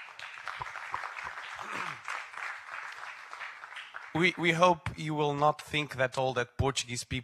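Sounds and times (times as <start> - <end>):
audience applause: 0.0 - 4.5
low vocal cheer from an audience: 0.6 - 2.1
speech: 4.2 - 7.2.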